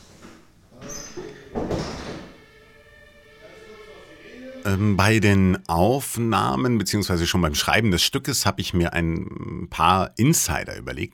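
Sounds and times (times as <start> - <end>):
door swinging shut with a muffled thud: 0.2 - 2.5
speech: 4.6 - 11.1.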